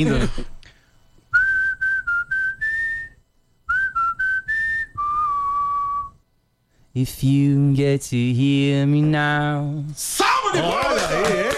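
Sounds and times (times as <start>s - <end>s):
speech: 0.0s - 0.6s, 7.0s - 11.5s
person whistling a short melody: 1.3s - 6.2s
laughter: 10.6s - 11.5s.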